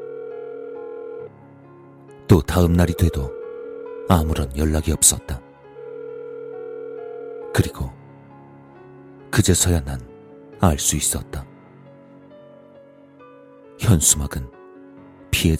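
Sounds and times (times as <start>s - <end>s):
electronic telephone ringback tone of an unanswered call: 0.0s - 1.4s, 2.9s - 4.5s, 5.8s - 7.6s
speech: 2.3s - 3.4s, 4.1s - 5.5s, 7.6s - 8.0s, 9.4s - 11.5s, 13.9s - 14.6s, 15.3s - 15.5s.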